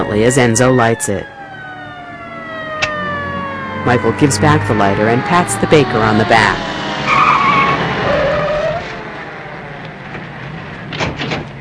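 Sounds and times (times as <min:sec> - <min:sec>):
police car engine rumble: 0:00.0 - 0:11.5
speech: 0:00.1 - 0:01.4, 0:03.8 - 0:06.8
police car tire squeal skidding to the curb: 0:05.2 - 0:09.1.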